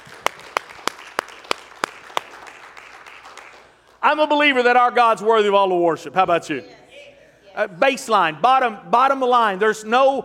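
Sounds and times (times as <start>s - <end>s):
audience clapping hands in unison: 0.0s - 4.0s
speech: 4.0s - 6.8s, 7.6s - 10.2s.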